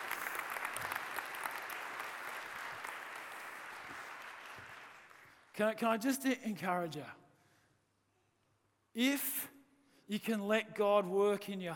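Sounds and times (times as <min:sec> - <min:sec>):
large audience applauding: 0:00.0 - 0:05.5
speech: 0:05.6 - 0:07.2, 0:09.0 - 0:11.7.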